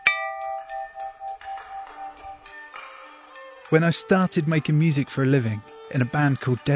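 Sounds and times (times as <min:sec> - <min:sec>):
old meat cleaver struck sharply and ringing: 0:00.0 - 0:02.2
speech: 0:03.7 - 0:06.7.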